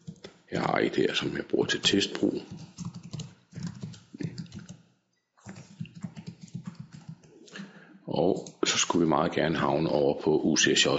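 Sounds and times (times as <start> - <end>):
speech: 0.5 - 2.7, 8.2 - 10.9
typing a username on a computer keyboard: 1.8 - 7.4.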